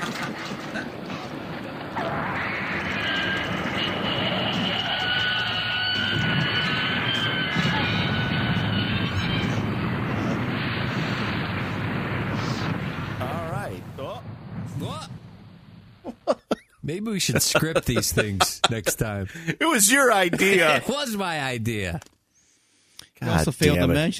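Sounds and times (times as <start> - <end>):
train wreck sound effect roaring rumble: 0.0 - 16.2
high shrieking metallic squeals of a train wreck: 2.0 - 11.3
laughter: 16.1 - 20.9
speech: 16.9 - 22.1, 23.3 - 24.1.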